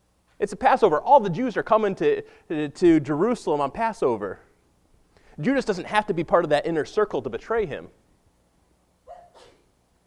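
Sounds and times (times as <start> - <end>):
speech: 0.4 - 4.5, 5.4 - 8.0
sneeze: 9.0 - 9.8.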